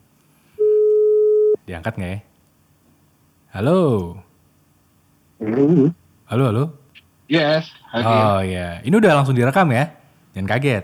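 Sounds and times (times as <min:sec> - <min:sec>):
steady electronic phone ringing tone while placing a call: 0:00.6 - 0:01.6
speech: 0:01.7 - 0:02.3, 0:03.5 - 0:04.3, 0:05.4 - 0:10.8.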